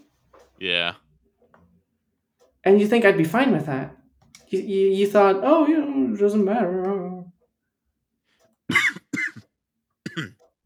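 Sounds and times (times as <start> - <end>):
speech: 0.6 - 1.0, 2.6 - 7.1
person coughing after choking on inhaled saliva: 8.7 - 10.4.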